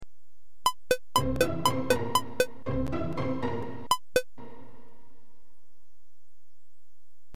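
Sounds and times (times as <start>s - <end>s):
guitar playing quavers: 0.7s - 4.6s.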